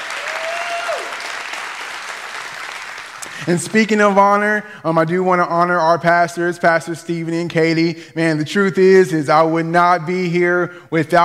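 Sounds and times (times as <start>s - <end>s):
audience applause: 0.0s - 3.5s
speech: 3.4s - 11.2s.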